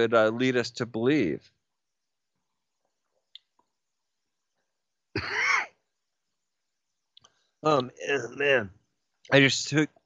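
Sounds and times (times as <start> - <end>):
speech: 0.0 - 1.6, 7.6 - 10.0
person choking and coughing on a drink of water: 5.2 - 5.7.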